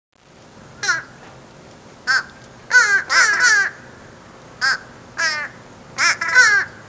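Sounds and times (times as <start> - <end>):
fish crows calling with harsh nasal caws: 0.8 - 1.2, 2.1 - 6.8.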